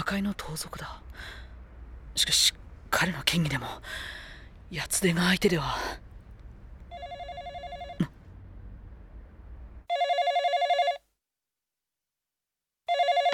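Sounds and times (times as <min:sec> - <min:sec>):
speech: 0:00.0 - 0:01.4, 0:02.2 - 0:06.0
low rumbling noise: 0:00.0 - 0:09.9
telephone ringing in trilling bursts: 0:06.9 - 0:08.1, 0:09.9 - 0:11.0, 0:12.9 - 0:13.3.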